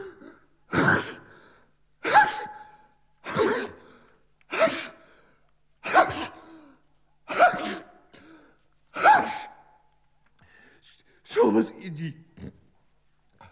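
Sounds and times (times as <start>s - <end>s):
person sneezing: 0.0s - 1.3s, 2.0s - 3.9s, 4.5s - 5.0s, 5.8s - 9.6s.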